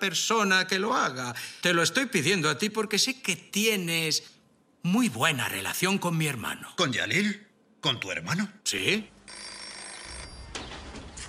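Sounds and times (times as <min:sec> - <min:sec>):
speech: 0:00.0 - 0:09.4
telephone bell ringing: 0:09.2 - 0:10.6.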